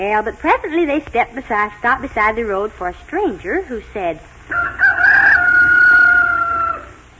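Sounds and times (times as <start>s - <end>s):
speech: 0.0s - 5.0s
rooster crowing: 4.5s - 7.1s.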